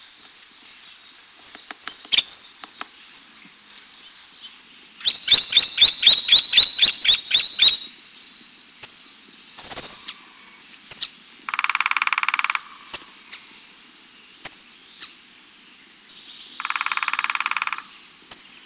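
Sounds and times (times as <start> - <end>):
Nuttall's woodpecker: 1.4 - 3.0, 5.0 - 7.9, 9.6 - 10.2, 10.9 - 13.4, 16.5 - 18.6.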